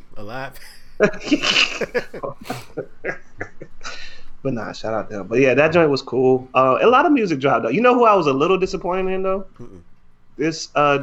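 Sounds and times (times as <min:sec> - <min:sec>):
speech: 0:00.2 - 0:03.3, 0:04.0 - 0:11.0
laughter: 0:01.0 - 0:04.1
loud sneeze: 0:02.4 - 0:02.8
breathy puff of air: 0:03.8 - 0:04.3
short voiced sounds: 0:09.6 - 0:09.9.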